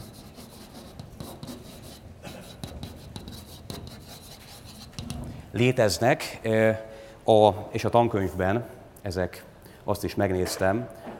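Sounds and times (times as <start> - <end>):
notes being written up during a lecture: 0.0 - 5.3
speech: 5.5 - 11.1.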